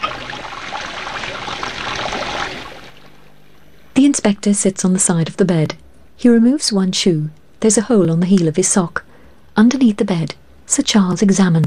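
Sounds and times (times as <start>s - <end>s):
bath tap running water: 0.0s - 3.4s
speech: 4.2s - 9.0s, 9.6s - 11.6s.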